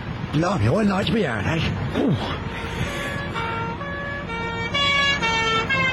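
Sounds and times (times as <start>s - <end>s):
rumbling street noise: 0.0s - 5.9s
speech: 0.4s - 3.6s
police car siren wailing in a two-tone pattern: 2.4s - 5.9s.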